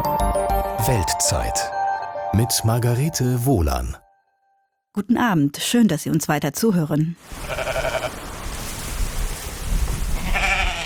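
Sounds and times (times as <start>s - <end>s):
speech: 0.8s - 4.0s, 5.0s - 7.7s
steady outdoor wind or light rain on the Faroe Islands: 7.2s - 10.8s
sheep bleating on the Faroe Islands in the North Atlantic: 7.3s - 8.2s, 10.2s - 10.8s.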